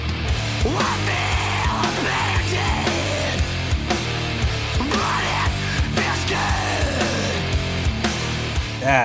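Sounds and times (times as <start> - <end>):
heavy chugging guitars in a metal breakdown: 0.0 - 9.0
harsh screamed vocals in a metal breakdown: 0.6 - 3.5, 4.8 - 7.5
speech: 8.8 - 9.0.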